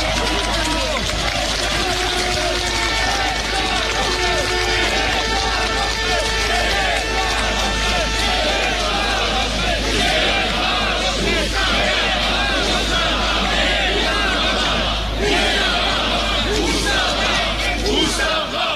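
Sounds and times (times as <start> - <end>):
large crowd chanting slogans in unison at an outdoor protest: 0.0 - 18.7.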